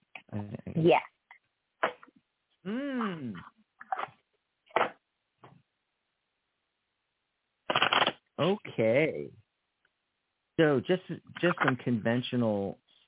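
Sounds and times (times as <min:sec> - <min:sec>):
speech: 0:00.4 - 0:01.1, 0:02.6 - 0:03.5, 0:08.4 - 0:09.4, 0:10.6 - 0:12.8
tarot cards being shuffled: 0:07.7 - 0:08.2.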